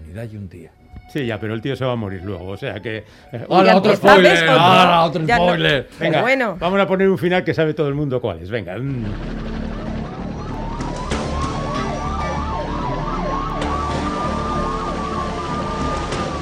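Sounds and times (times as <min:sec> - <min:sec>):
speech: 0:00.2 - 0:09.5
police sirens wailing in a chase: 0:09.2 - 0:16.4.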